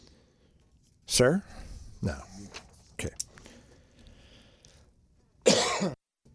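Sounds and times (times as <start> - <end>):
speech: 1.2 - 3.2
audience member coughing harshly: 5.4 - 6.0.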